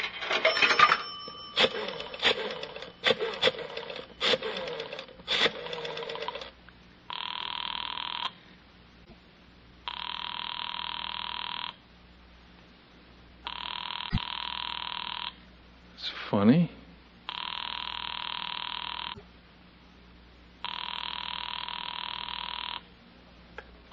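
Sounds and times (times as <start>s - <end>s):
telephone ringing: 0.2s - 8.3s, 9.9s - 11.8s, 13.5s - 15.4s, 17.3s - 19.2s, 20.6s - 22.9s.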